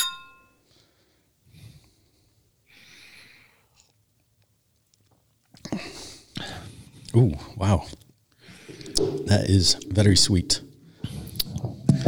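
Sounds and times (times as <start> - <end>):
glasses of ale clinking in a toast: 0.0 - 0.6
breathing: 0.6 - 3.9, 5.6 - 7.1, 8.3 - 9.0, 10.8 - 11.4
speech: 7.1 - 8.0, 9.0 - 10.6
sipping and swallowing: 8.5 - 12.0.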